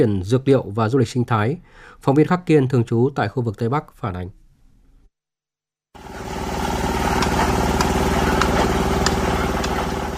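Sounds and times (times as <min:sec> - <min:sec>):
speech: 0:00.0 - 0:04.4
heavy road-building machinery engine drone at a road construction site in Lai Chau province Vietnam: 0:06.0 - 0:10.1.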